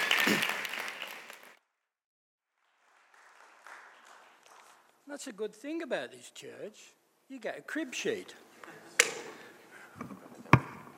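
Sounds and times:
audience applause: 0.0s - 1.6s, 2.6s - 4.9s
speech: 5.1s - 8.8s.

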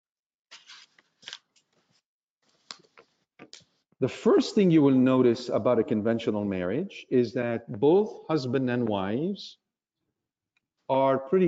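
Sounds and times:
paper notes pages being shuffled and handled: 0.5s - 3.7s
speech: 4.0s - 9.6s, 10.9s - 11.4s.

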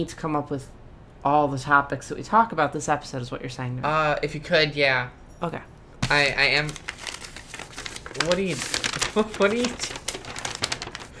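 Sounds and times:
speech: 0.0s - 6.9s, 8.2s - 10.0s
sheet of paper with a written list crinkling and rustling: 6.0s - 11.1s.

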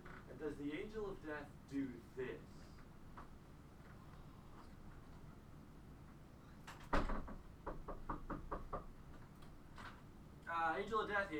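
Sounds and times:
speech: 0.4s - 3.3s, 10.7s - 11.3s
light taps on a door: 6.7s - 9.9s
knocking on a door: 6.9s - 9.0s.

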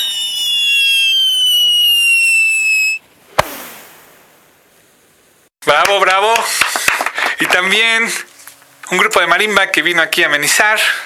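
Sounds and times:
firework rocket whistling with a falling shriek: 0.0s - 4.3s
firework bursting with a sharp loud bang: 3.3s - 4.4s
speech: 5.9s - 8.3s, 8.9s - 11.0s.

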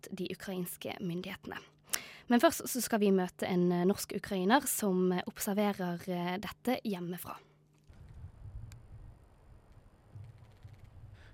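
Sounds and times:
speech: 0.0s - 1.7s, 2.3s - 7.5s
gusty wind buffeting the microphone outdoors: 7.9s - 11.3s
faint clicks: 9.7s - 11.3s.

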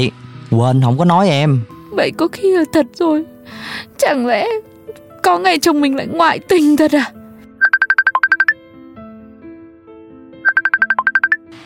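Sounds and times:
speech: 0.0s - 4.7s, 5.3s - 7.2s
mobile phone ringtone for an incoming call: 7.6s - 8.6s, 10.4s - 11.5s.

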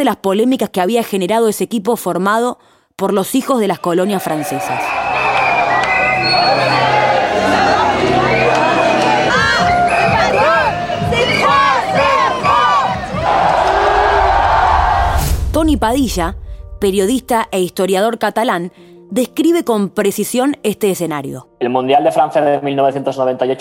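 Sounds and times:
speech: 0.0s - 5.2s, 6.2s - 8.1s, 15.8s - 23.5s
large crowd cheering outdoors: 3.6s - 15.3s
excited shouts: 3.7s - 15.1s
horns: 4.5s - 15.0s
whistles: 4.8s - 7.2s, 8.2s - 8.9s, 9.6s - 10.6s.

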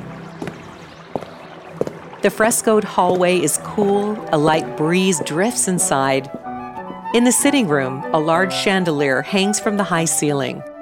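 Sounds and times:
canal water lapping against a gondola: 0.1s - 6.5s
speech: 2.2s - 6.5s, 7.1s - 10.7s.

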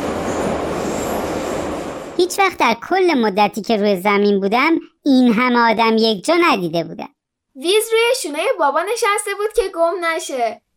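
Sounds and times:
subway train wheels whining on rails: 0.0s - 2.2s
subway train rumbling: 0.0s - 2.8s
speech: 2.2s - 10.6s.

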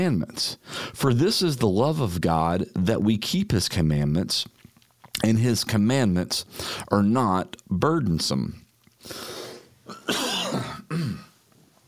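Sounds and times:
speech: 0.0s - 4.6s, 5.2s - 10.7s
person coughing harshly: 9.9s - 11.4s.

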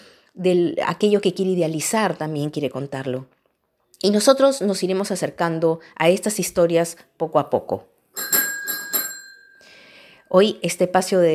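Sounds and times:
speech: 0.4s - 3.4s, 4.0s - 8.4s, 10.3s - 11.3s
bell ringing: 8.2s - 9.9s.

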